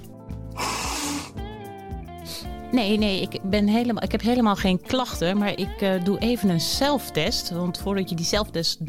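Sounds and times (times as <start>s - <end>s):
forceful noisy nose blow: 0.4s - 1.6s
speech: 2.7s - 8.8s.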